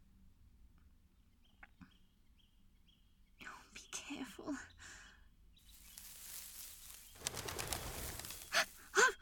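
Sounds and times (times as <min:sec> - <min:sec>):
speech: 0:04.1 - 0:04.8
quail bursting into flight with whirring wingbeats: 0:05.7 - 0:09.0.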